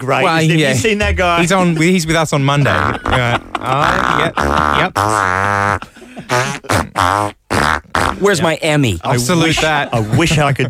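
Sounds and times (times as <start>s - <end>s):
speech: 0.0s - 10.6s
laughter: 0.5s - 7.0s, 9.0s - 10.6s
person imitating fart noises with the mouth: 2.7s - 8.4s.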